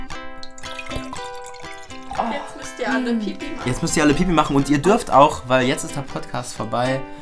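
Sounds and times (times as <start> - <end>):
apple water pouring into a glass: 0.1 - 4.3
speech: 2.2 - 7.2.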